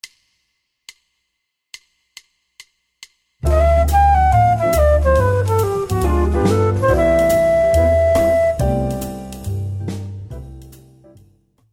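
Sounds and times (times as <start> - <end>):
bebop scale played: 3.4 - 9.7.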